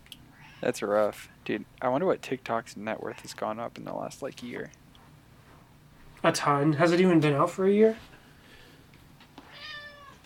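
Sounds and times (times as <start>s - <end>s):
speech: 0.6s - 4.8s, 6.2s - 8.1s
cat meowing: 9.5s - 10.2s.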